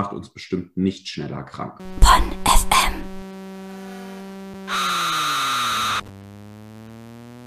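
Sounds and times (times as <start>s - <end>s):
speech: 0.0s - 3.2s
harsh buzzing electronic noise from an arcade racing game: 1.8s - 7.4s
arcade Formula 1 racing game synthetic engine drone: 3.1s - 7.4s.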